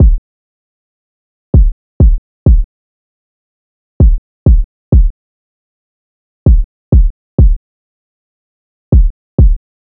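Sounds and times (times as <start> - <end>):
kick drum loop: 0.0 - 0.2, 1.6 - 2.7, 4.0 - 5.1, 6.5 - 7.6, 8.9 - 9.6.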